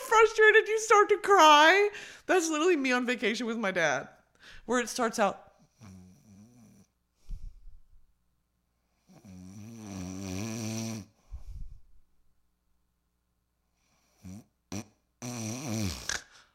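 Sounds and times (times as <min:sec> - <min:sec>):
speech: 0:00.2 - 0:05.5
person imitating snoring with nasal rumbling snorts and breathy rasps: 0:09.1 - 0:11.1, 0:14.2 - 0:16.3.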